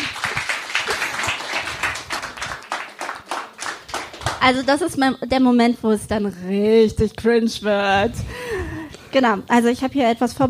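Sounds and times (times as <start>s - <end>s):
small group clapping: 0.0s - 4.8s
speech: 4.4s - 8.4s, 9.1s - 10.4s.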